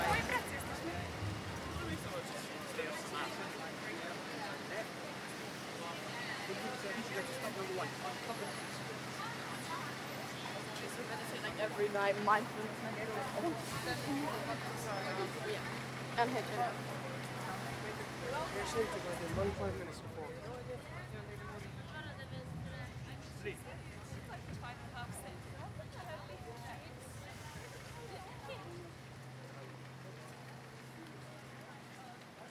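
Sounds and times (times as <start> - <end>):
dense crowd chatter on a busy street: 0.0 - 32.5
passing traffic: 0.0 - 32.5
steady low engine drone: 0.1 - 2.1.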